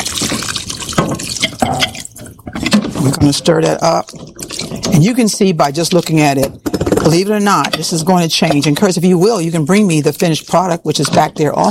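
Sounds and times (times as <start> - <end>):
cups of water poured into a pot of plant-based vegetarian curry: 0.0 - 6.4, 8.0 - 11.6
speech: 3.2 - 4.3, 4.9 - 11.6.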